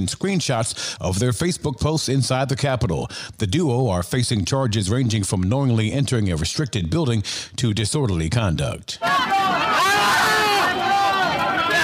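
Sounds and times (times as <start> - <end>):
speech: 0.0 - 9.3
man yelling in strained pained bursts: 9.0 - 11.8
roar of a packed jostling crowd with overlapping shouting voices: 9.0 - 11.8.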